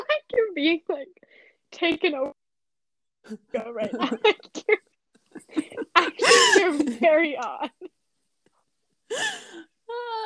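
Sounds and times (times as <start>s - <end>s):
speech: 0.6s - 2.4s, 3.2s - 4.8s, 5.5s - 7.9s, 9.1s - 10.2s
sharp breathy gasp: 9.1s - 9.7s.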